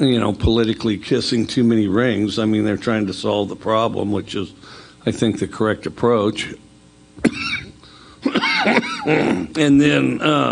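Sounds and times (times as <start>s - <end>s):
speech: 0.0s - 6.6s, 8.6s - 10.5s
man coughing: 7.2s - 9.6s.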